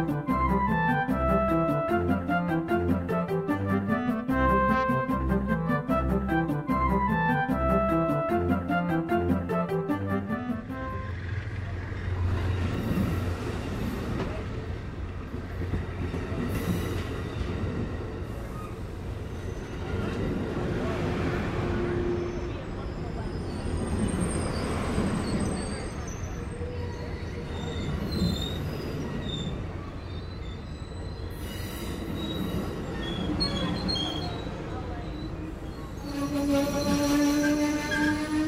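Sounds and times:
passenger train car rolling along the rails from San Francisco to Portland USA: 0.0s - 38.4s
high train wheel squeals: 22.0s - 38.4s.

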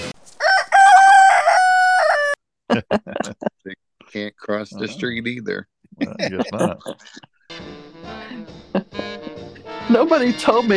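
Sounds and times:
rooster crowing: 0.4s - 2.4s
speech: 2.7s - 3.4s, 4.1s - 7.3s, 9.9s - 10.7s
laughter: 2.7s - 3.5s, 4.2s - 7.2s.

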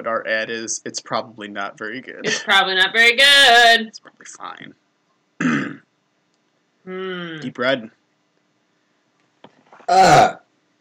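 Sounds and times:
speech: 0.0s - 4.8s, 6.9s - 8.0s, 9.9s - 10.4s
loud burp after eating pizza and drinking a soda: 5.4s - 5.9s, 9.9s - 10.5s.

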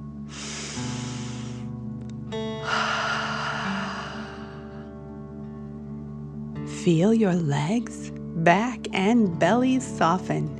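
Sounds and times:
soft sustained tones: 0.0s - 10.5s
deep breath in and out through the mouth during a guided breathing exercise: 0.3s - 1.9s, 2.5s - 5.0s
speech: 6.8s - 10.5s.

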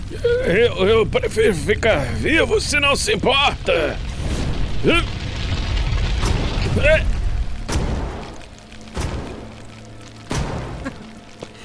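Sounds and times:
speech: 0.1s - 4.1s, 4.8s - 5.1s, 6.8s - 7.1s
gunshots: 4.2s - 9.6s, 10.3s - 11.0s.

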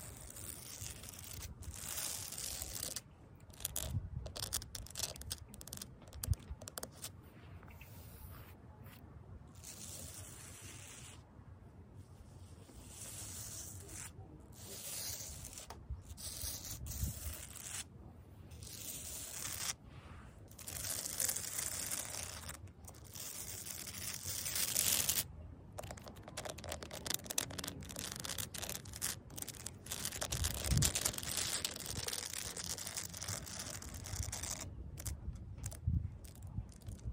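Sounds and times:
fake nails scratching across concrete: 0.0s - 11.2s, 12.6s - 17.9s, 18.5s - 19.8s, 20.5s - 37.1s.

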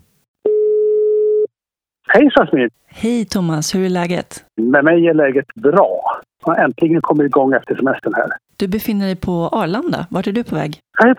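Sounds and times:
telephone ringback tone: 0.5s - 1.5s
speech: 2.1s - 11.1s.

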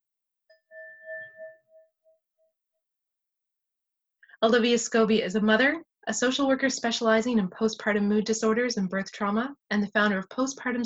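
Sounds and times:
meditation bell ringing: 0.5s - 2.5s
speech: 4.4s - 10.8s.

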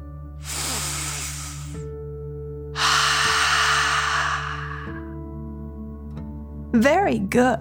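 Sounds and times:
person breathing in through the nose and out through the mouth: 0.4s - 1.8s, 2.8s - 5.2s
speech: 6.8s - 7.5s.

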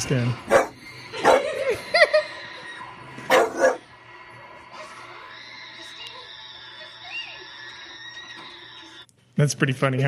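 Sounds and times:
speech: 0.0s - 0.6s, 9.4s - 10.0s
bulldog barking and yelping at a scary movie scene: 0.5s - 1.6s, 3.3s - 3.9s
laughter: 1.2s - 3.0s.

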